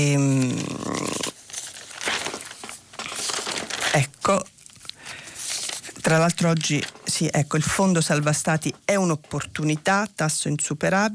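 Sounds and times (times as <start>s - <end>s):
speech: 0.0s - 0.7s, 4.0s - 4.5s, 6.1s - 11.1s
newspaper pages rustling and crinkling as turned and flattened: 0.0s - 8.8s.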